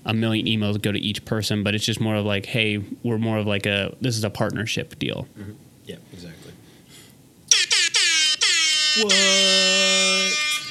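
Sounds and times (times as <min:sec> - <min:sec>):
speech: 0:00.1 - 0:06.5, 0:09.0 - 0:10.4
air horn blasts: 0:07.5 - 0:10.6.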